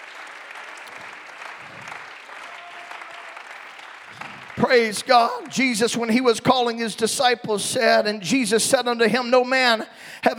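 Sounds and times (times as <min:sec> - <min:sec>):
crowd clapping: 0:00.0 - 0:06.6
speech: 0:04.6 - 0:10.3.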